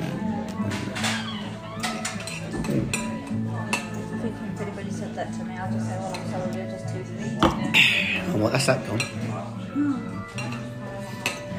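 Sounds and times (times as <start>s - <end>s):
glass squeaking with a short rubbing tone: 0.0s - 3.0s
glassware and dishes clinking: 0.6s - 4.4s, 5.6s - 9.5s, 10.1s - 11.5s
speech: 2.7s - 3.0s, 8.4s - 10.6s.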